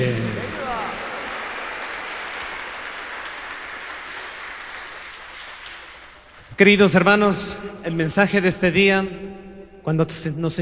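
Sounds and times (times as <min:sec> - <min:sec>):
large crowd applauding after a prayer: 0:00.0 - 0:06.6
speech: 0:06.6 - 0:10.6.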